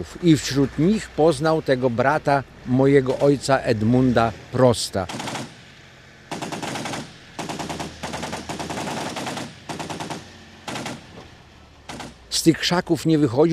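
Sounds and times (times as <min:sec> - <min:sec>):
speech: 0:00.0 - 0:05.3, 0:12.4 - 0:13.5
rapid automatic gunfire: 0:05.1 - 0:05.6, 0:06.3 - 0:11.1, 0:11.9 - 0:12.2.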